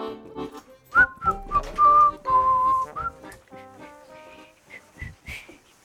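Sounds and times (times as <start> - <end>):
person whistling a short melodic tune at a table: 0.9 - 3.5, 4.7 - 5.6.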